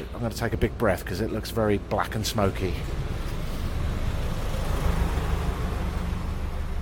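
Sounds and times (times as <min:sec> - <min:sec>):
speech: 0:00.2 - 0:03.0
large truck rumbling past with deep engine drone: 0:02.7 - 0:06.8.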